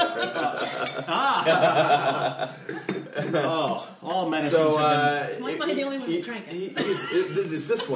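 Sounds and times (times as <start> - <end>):
glasses clinking in a toast: 0.0 - 1.1
laughter: 0.0 - 4.0, 6.8 - 7.9
speech: 0.2 - 7.9.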